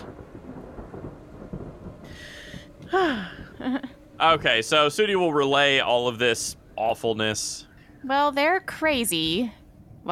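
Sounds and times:
deep rolling thunder over a city: 0:00.0 - 0:08.0
rain-like hiss: 0:00.0 - 0:08.0
brief sharp descending tone: 0:01.9 - 0:09.1
speech: 0:02.9 - 0:10.1.

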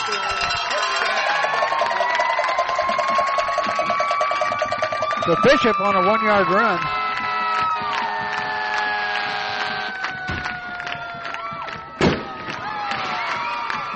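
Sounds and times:
crowd cheering at a high school football game: 0:00.0 - 0:13.9
sustained horn-like tones: 0:02.5 - 0:10.2
speech: 0:05.3 - 0:07.0
firework boom at a high school football game: 0:12.0 - 0:12.5.

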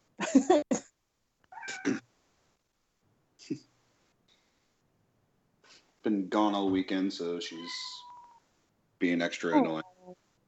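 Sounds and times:
speech: 0:00.3 - 0:00.8, 0:06.1 - 0:08.1, 0:09.0 - 0:10.2
domestic cat meowing: 0:01.5 - 0:02.0, 0:07.5 - 0:08.4, 0:09.5 - 0:10.2.

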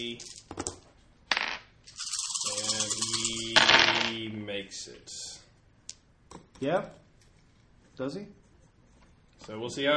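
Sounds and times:
speech: 0:00.0 - 0:00.6, 0:04.1 - 0:05.4, 0:06.3 - 0:07.0, 0:08.0 - 0:08.4, 0:09.4 - 0:09.9
dice rolling on a hard tabletop: 0:00.2 - 0:04.2.

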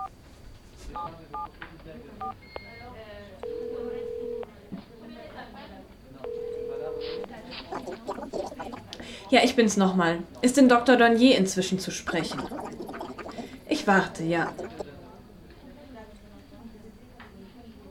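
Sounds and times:
faint noise: 0:00.0 - 0:17.8
speech: 0:00.9 - 0:04.0, 0:07.0 - 0:12.6, 0:13.8 - 0:14.8
touch-tone beeps of a telephone number being dialed: 0:02.2 - 0:02.8, 0:03.4 - 0:04.4, 0:06.3 - 0:08.2
long steady telephone ringback tones: 0:03.4 - 0:04.4, 0:06.3 - 0:07.3.

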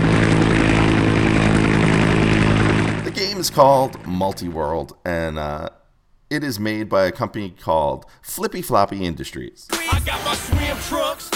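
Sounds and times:
helicopter rotor drone: 0:00.0 - 0:04.6
speech: 0:03.6 - 0:11.3.

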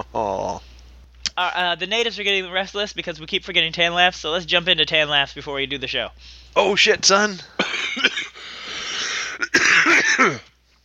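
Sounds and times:
speech: 0:01.4 - 0:08.2, 0:10.2 - 0:10.5
person coughing: 0:07.6 - 0:10.5.

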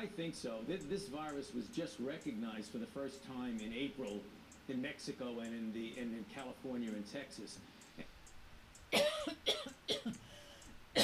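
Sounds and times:
speech: 0:00.0 - 0:08.1
person coughing in harsh loud bursts: 0:09.0 - 0:10.2.

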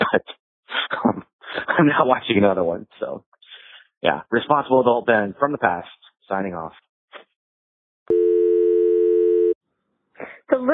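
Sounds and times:
laughter: 0:00.0 - 0:00.4
speech: 0:00.1 - 0:00.4, 0:01.8 - 0:03.3, 0:04.0 - 0:06.9, 0:10.2 - 0:10.7
telephone dial tone after a phone is hung up: 0:08.1 - 0:09.6.

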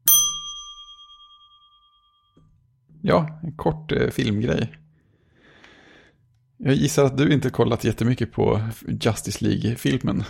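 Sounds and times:
bright ding from a bell sound effect: 0:00.0 - 0:02.4
speech: 0:02.4 - 0:04.8, 0:06.6 - 0:10.2.

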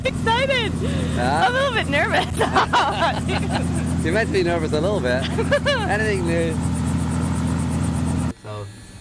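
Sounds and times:
Robinson 44 four-seat tourist helicopter rotor chop and engine whine: 0:00.0 - 0:08.9
speech: 0:00.7 - 0:06.7
laughter: 0:02.0 - 0:04.0, 0:05.0 - 0:06.2.

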